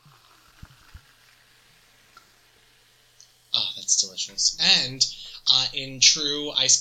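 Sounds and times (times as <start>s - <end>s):
strawberry watermelon seltzer fizzing as poured into champagne flutes: 0.0s - 2.6s
speech: 4.0s - 6.7s.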